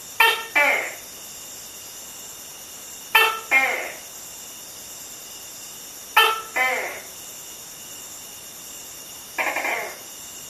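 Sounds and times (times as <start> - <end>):
male Tokay gecko Gekko gecko mating call: 0.1 - 1.1, 3.1 - 4.1, 6.2 - 7.2, 9.4 - 10.1.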